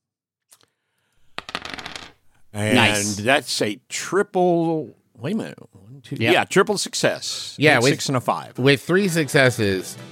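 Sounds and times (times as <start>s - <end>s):
four eight-sided dice rolled across a hard surface: 1.3s - 2.2s
speech: 2.5s - 10.1s.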